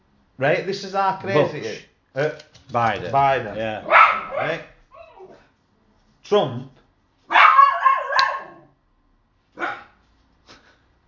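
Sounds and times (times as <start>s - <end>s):
speech: 0.4s - 4.7s, 6.3s - 6.8s
dog barking, yelping and whining: 3.8s - 5.5s, 7.3s - 8.8s, 9.6s - 10.0s.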